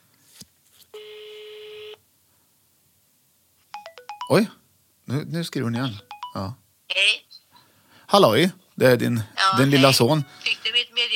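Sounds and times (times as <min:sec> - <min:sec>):
phone call ringing tone: 0:01.0 - 0:02.0, 0:03.8 - 0:04.6, 0:05.8 - 0:06.6
speech: 0:04.3 - 0:07.2, 0:08.1 - 0:10.5.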